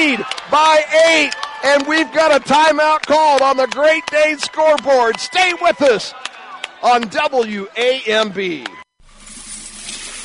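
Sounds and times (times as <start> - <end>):
speech: 0.0 - 8.8
coins pouring down a drain: 9.0 - 10.2.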